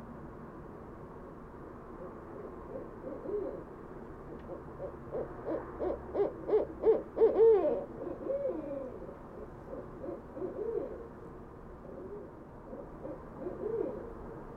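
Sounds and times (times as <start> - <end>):
barred owls hooting in west Dyke Marsh: 2.0 - 11.2, 11.8 - 14.2.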